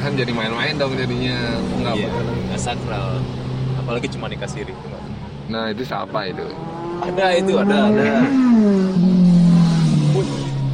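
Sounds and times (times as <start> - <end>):
speech: 0.0 - 9.2
small BMW GS motorcycle engine passing: 6.4 - 10.7.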